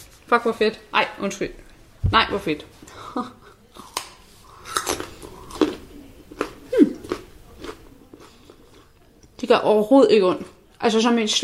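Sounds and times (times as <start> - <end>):
speech: 0.3 - 3.4, 9.4 - 11.4
chewing a raw carrot: 3.8 - 9.4.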